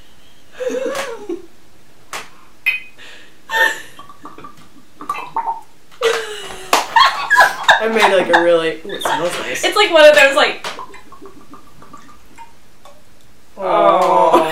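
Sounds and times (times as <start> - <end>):
laughter: 0.6 - 1.4, 6.0 - 9.6, 13.7 - 14.5
liquid pouring back into a container with gurgling: 4.0 - 5.7, 10.8 - 13.0
speech: 8.0 - 10.7.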